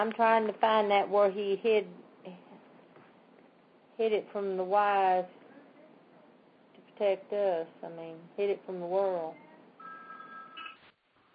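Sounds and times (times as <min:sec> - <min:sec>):
speech: 0:00.0 - 0:02.4, 0:04.0 - 0:05.4, 0:07.0 - 0:09.4
telephone ringing over a phone line: 0:09.8 - 0:10.8.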